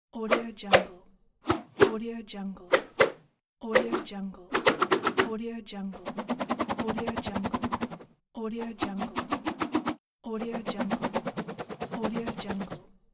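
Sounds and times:
fast whip swishes: 0.3s - 2.0s, 2.7s - 5.3s, 6.0s - 12.8s.

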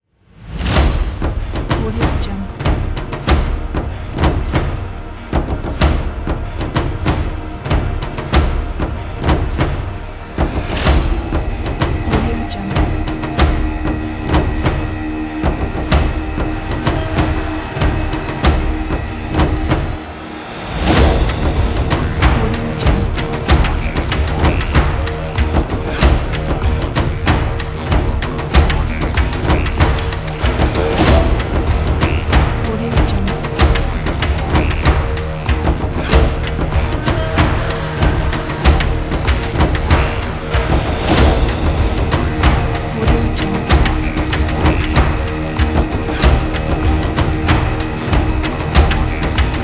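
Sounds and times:
viking drums: 0.3s - 49.6s.

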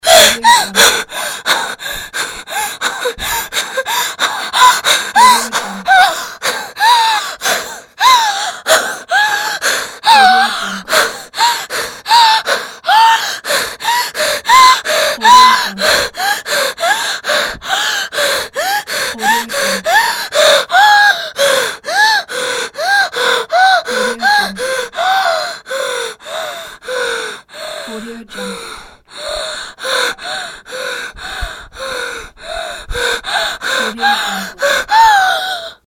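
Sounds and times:
woman breathing scared: 0.0s - 35.8s.

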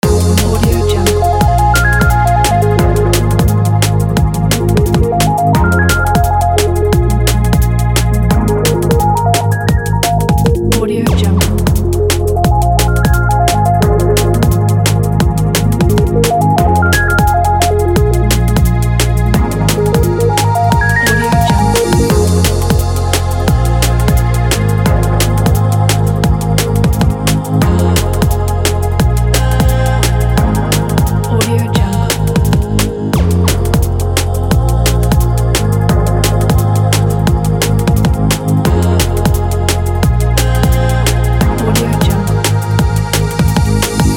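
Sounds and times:
ambient drum and bass loop: 0.0s - 44.1s.

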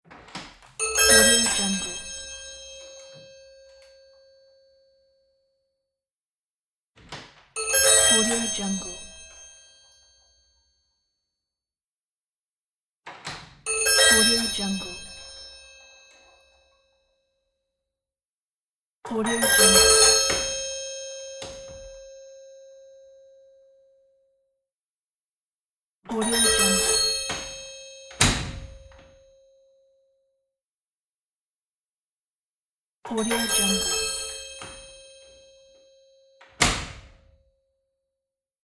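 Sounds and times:
old mechanic shop doorbell with three notes: 0.8s - 5.1s, 7.6s - 10.8s, 13.7s - 16.9s, 19.4s - 23.7s, 26.2s - 29.7s, 33.2s - 37.3s.

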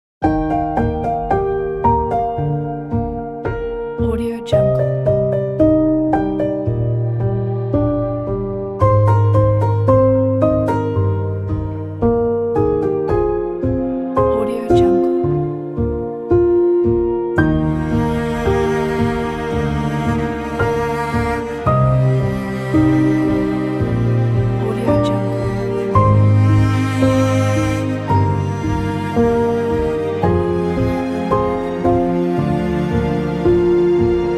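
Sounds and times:
wedding piano: 0.2s - 34.3s
wedding strings: 0.2s - 34.3s.

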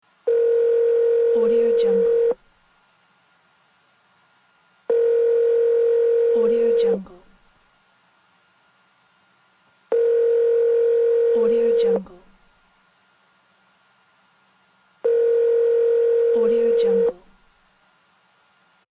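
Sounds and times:
phone call: 0.3s - 2.4s, 4.9s - 7.1s, 9.9s - 12.1s, 15.0s - 17.2s.

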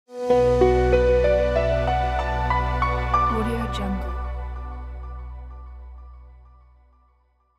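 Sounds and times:
elegant ambient logo music: 0.1s - 7.5s.

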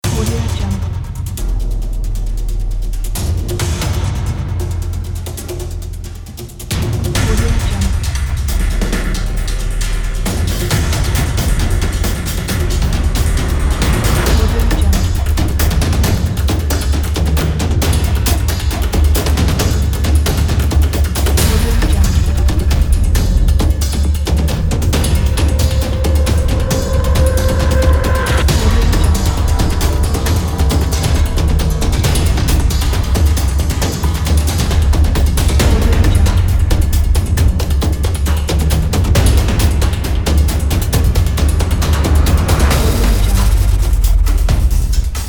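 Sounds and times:
epic tribal hybrid drums: 0.0s - 45.2s.

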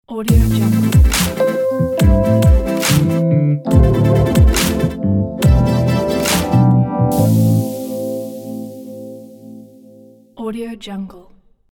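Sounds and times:
chill funky hip hop logo music: 0.3s - 9.6s.

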